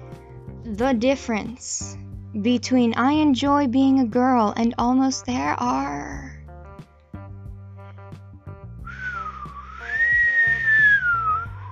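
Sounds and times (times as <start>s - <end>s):
speech: 0.7s - 6.2s
low steady drone: 8.9s - 11.7s
person whistling one long wavering note: 8.9s - 11.7s.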